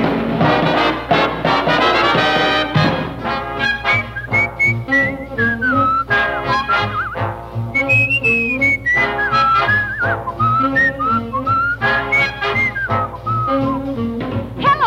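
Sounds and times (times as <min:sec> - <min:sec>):
full band accompaniment: 0:00.0 - 0:14.8
person whistling a bright lilting melody: 0:03.8 - 0:14.0.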